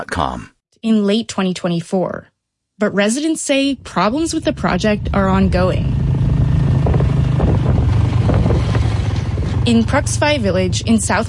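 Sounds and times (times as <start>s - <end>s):
speech: 0.0s - 6.0s, 9.6s - 11.2s
motorbike engine droning while riding: 3.7s - 11.2s
wind buffeting the microphone: 3.7s - 11.2s.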